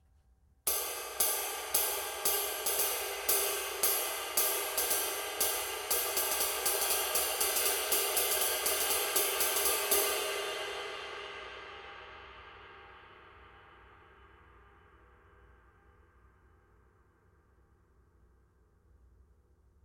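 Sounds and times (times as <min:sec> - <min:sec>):
22in bounce ride cymbal: 0:00.7 - 0:15.0.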